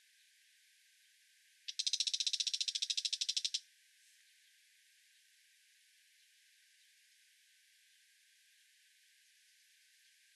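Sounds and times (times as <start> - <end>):
brown shrike chattering: 1.7 - 3.6.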